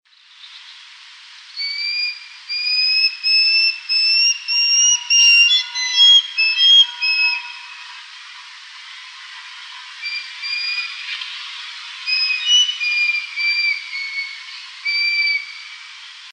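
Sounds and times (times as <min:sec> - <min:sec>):
juvenile caracaras calling: 0:01.6 - 0:07.9, 0:12.1 - 0:15.8.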